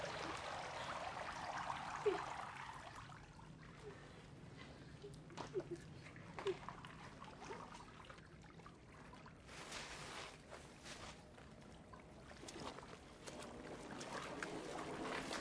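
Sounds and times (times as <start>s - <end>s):
sharp splashes and drips of pond water: 0.0s - 10.5s, 11.3s - 15.4s
pond water sloshing and trickling as a person gets up out of a shallow pond: 0.0s - 15.4s.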